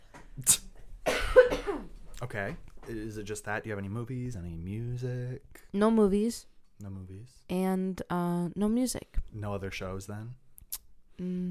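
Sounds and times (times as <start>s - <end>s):
person coughing: 0.5s - 2.0s
speech: 2.2s - 10.4s, 11.2s - 11.4s.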